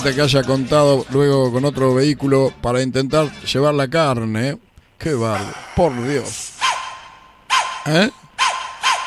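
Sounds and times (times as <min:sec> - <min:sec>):
speech: 0:00.0 - 0:06.6, 0:07.8 - 0:08.2
dogs barking: 0:05.4 - 0:09.0.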